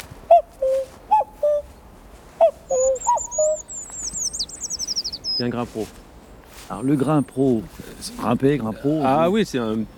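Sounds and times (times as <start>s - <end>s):
common cuckoo calling: 0.3s - 1.8s, 2.4s - 5.5s
smaller birds chirping: 2.4s - 9.2s
speech: 5.4s - 6.1s, 6.7s - 9.9s.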